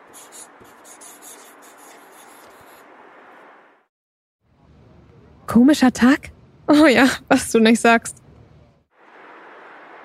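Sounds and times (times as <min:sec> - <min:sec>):
pen writing on a paper note: 0:00.0 - 0:02.9
speech: 0:05.5 - 0:08.2.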